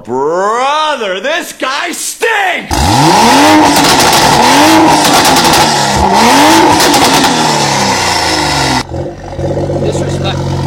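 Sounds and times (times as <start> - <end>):
speech: 0.0 - 7.2
600-horsepower lightweight car engine revving: 2.7 - 10.6.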